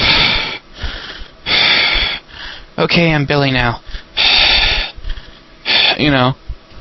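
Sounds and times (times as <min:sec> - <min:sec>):
heavy breathing into a microphone: 0:00.0 - 0:02.8, 0:03.8 - 0:06.1
speech: 0:02.8 - 0:04.0, 0:06.0 - 0:06.4.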